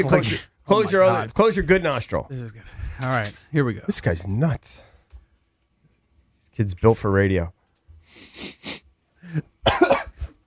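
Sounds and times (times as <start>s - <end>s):
speech: 0.0s - 4.9s, 6.6s - 8.6s, 9.3s - 9.9s
harsh dry hacking coughs: 8.4s - 10.4s.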